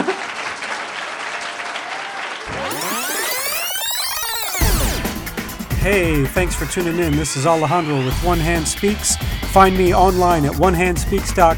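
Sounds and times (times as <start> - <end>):
audience applauding: 0.0 - 9.9
swooping rising-and-falling electronic tones: 2.5 - 9.0
speech: 5.8 - 11.5.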